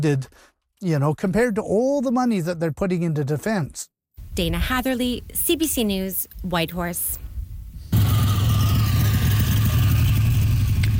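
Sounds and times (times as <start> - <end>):
speech: 0.0 - 7.2
classic car engine idling: 7.9 - 10.9.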